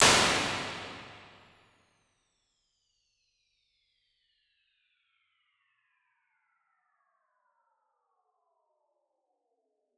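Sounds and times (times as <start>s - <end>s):
plate reverb impulse response: 0.0s - 1.4s.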